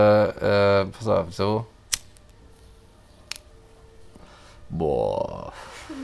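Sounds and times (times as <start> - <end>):
speech: 0.0 - 1.8
lighter flicked to light a cigarette: 1.9 - 2.4, 3.2 - 3.5.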